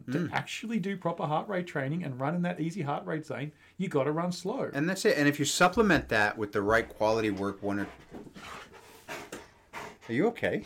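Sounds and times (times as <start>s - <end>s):
speech: 0.1s - 8.8s, 10.1s - 10.6s
dog panting and whimpering excitedly in play mode: 6.8s - 10.6s.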